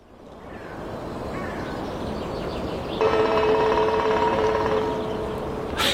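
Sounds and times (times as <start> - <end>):
steady outdoor noise: 0.0 - 5.9
black woodpecker drumming rapidly on a metal sign: 3.0 - 5.4.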